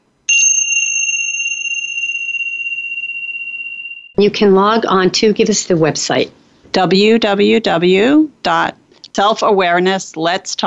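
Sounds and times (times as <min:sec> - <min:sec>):
meditation bell struck: 0:00.3 - 0:04.2
speech: 0:04.2 - 0:10.6.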